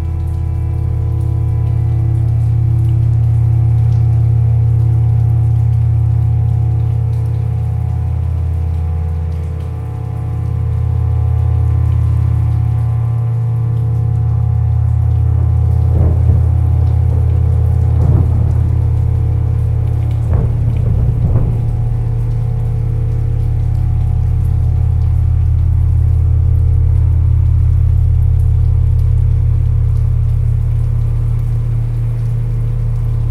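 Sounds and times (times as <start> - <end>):
deep low layered drones: 0.0 - 33.2
rain: 0.0 - 33.2
brief crackling bursts: 15.8 - 24.6.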